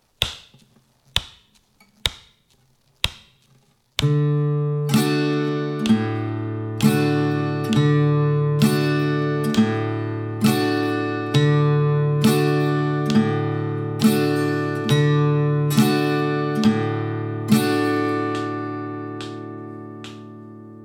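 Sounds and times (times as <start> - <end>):
alternating bass strum: 4.0 - 20.4.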